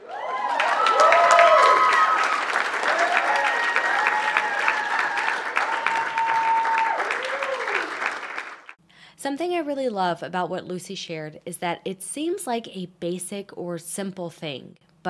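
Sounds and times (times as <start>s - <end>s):
crowd applauding: 0.0s - 8.8s
speech: 9.2s - 15.0s.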